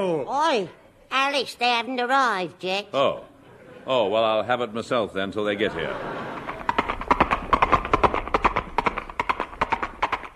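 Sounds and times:
speech: 0.0 - 6.2
laughter: 3.4 - 4.2, 5.5 - 7.1
horse hooves clip-clopping: 6.4 - 10.3.

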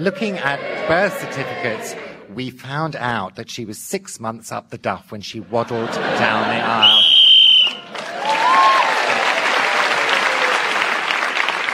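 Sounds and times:
speech: 0.0 - 7.0
laughter: 5.4 - 7.0
whistle blast blown to end a game round: 6.8 - 7.9
crowd applauding: 6.8 - 11.7.

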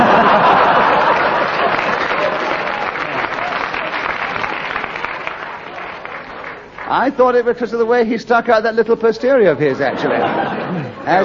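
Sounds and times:
laughter: 0.0 - 4.6, 9.7 - 11.2
large audience applause: 0.0 - 7.8
speech: 7.0 - 11.2.

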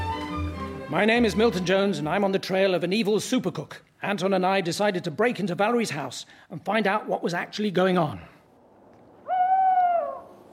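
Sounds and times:
speech: 0.9 - 8.3
owl hooting in the daytime: 9.2 - 10.5.

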